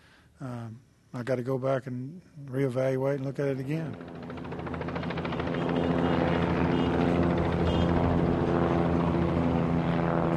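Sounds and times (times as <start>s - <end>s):
speech: 0.4s - 4.3s
rotor drone of helicopters circling overhead: 3.4s - 10.3s
aircraft engine noise of planes circling overhead: 3.5s - 10.3s.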